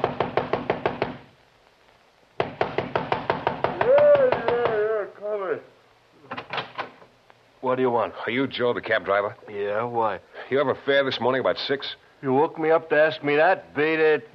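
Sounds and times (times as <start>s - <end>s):
fist pounding on a wooden door: 0.0s - 1.2s, 2.4s - 4.7s
man calling out: 3.8s - 5.8s
speech: 7.7s - 14.3s.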